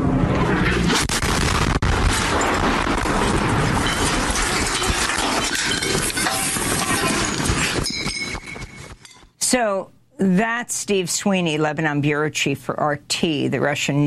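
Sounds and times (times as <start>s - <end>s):
airstrike explosion roaring and rumbling: 0.0s - 7.9s
dense crackling debris noise: 0.2s - 9.3s
speech: 9.5s - 14.0s.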